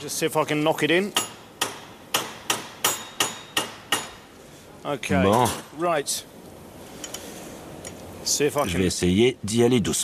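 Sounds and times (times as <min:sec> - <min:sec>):
speech: 0:00.0 - 0:01.4, 0:04.8 - 0:06.4, 0:08.3 - 0:10.0
hammer striking a bolt used as a punch on a stuck hex screw: 0:01.1 - 0:04.3.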